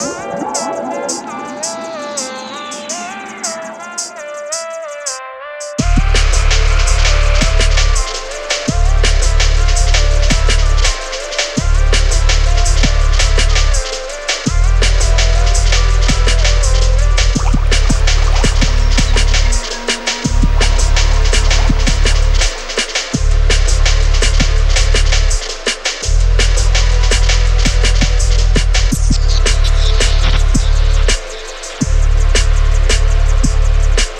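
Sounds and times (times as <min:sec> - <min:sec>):
drums: 0:00.0 - 0:34.1
bass: 0:05.8 - 0:34.1.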